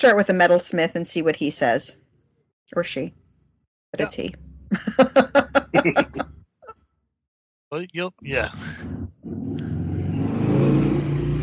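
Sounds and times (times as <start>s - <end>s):
speech: 0.0s - 2.0s, 2.7s - 3.2s, 3.9s - 6.2s, 7.7s - 9.7s
laughter: 4.0s - 6.2s, 7.8s - 8.8s
motorcycle engine revving: 8.3s - 11.4s.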